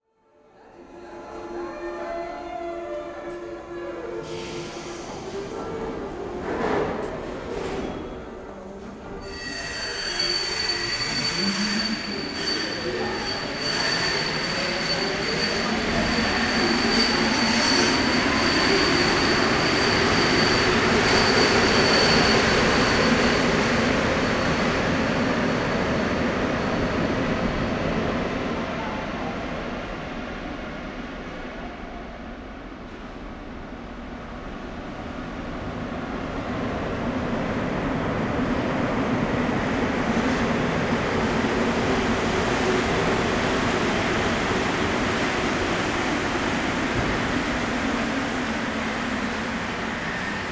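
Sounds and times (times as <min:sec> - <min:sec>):
underground metro ambience at Louvre: 0:00.0 - 0:50.5.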